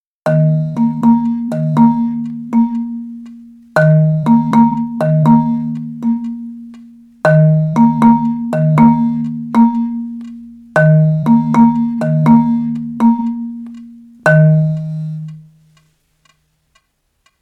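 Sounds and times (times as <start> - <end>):
marimba sound effect: 0.3 - 15.7.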